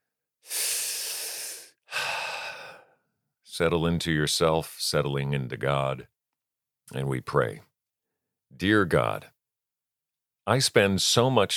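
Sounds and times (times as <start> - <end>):
deep breaths drawn slowly: 0.4 - 3.1
speech: 3.6 - 6.1, 6.9 - 7.7, 8.5 - 9.3, 10.4 - 11.5.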